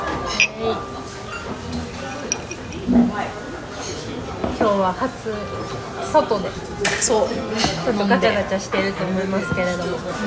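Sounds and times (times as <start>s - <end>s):
murmur of a crowded bar with people talking: 0.0s - 10.2s
glasses clinking in a toast: 0.2s - 3.2s
speech: 0.6s - 2.1s, 4.6s - 10.2s.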